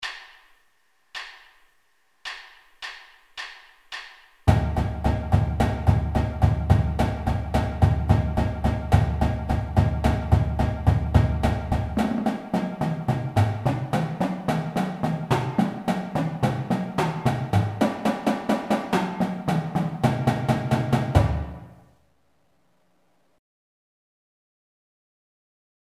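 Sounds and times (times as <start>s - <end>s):
medium marching drums warming up: 2.4s - 21.8s.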